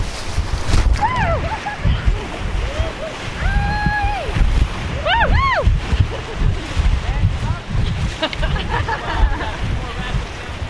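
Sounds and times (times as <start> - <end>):
rushing churning water as a raft runs through river rapids: 0.0 - 10.6
wind buffeting the microphone: 0.0 - 10.6
people whooping and shouting excitedly: 1.0 - 5.8
laughter: 1.2 - 3.3, 5.9 - 7.0, 8.0 - 10.0.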